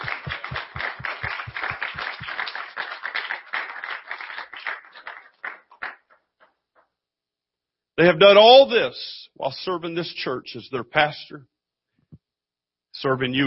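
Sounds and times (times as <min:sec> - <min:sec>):
church audience applauding: 0:00.0 - 0:06.2
speech: 0:08.0 - 0:11.5, 0:13.0 - 0:13.4.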